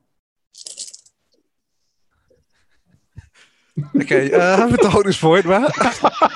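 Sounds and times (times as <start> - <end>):
ten dice rolled during a tabletop game: 0.6 - 1.1
laughter: 2.2 - 6.3
speech: 3.8 - 6.3.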